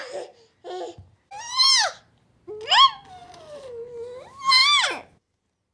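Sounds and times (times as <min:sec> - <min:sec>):
baby squealing: 0:01.3 - 0:05.1.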